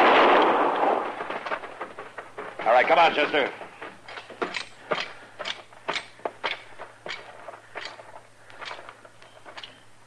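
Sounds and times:
gunshot in a Western-style standoff: 0.0 - 1.5
speech: 2.7 - 3.6.

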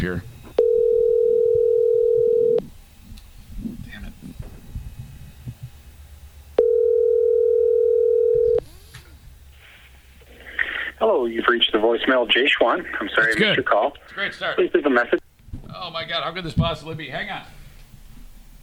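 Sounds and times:
speech: 0.0 - 0.3, 11.3 - 15.2, 15.8 - 17.6
telephone tone while placing a call: 0.6 - 2.6, 6.6 - 8.6
voices: 8.7 - 17.6.

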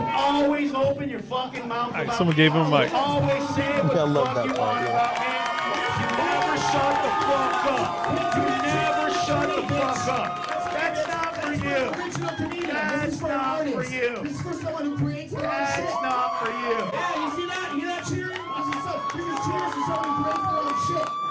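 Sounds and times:
large crowd cheering and shouting after a performance: 0.0 - 0.8, 1.9 - 21.3
speech: 0.3 - 5.8, 6.6 - 10.6, 11.5 - 18.2
rising whoops from the crowd: 4.8 - 11.4, 15.4 - 21.3.

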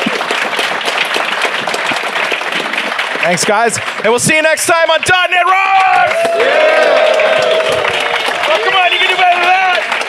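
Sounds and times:
audience applause: 0.0 - 10.0
speech: 3.2 - 9.9.

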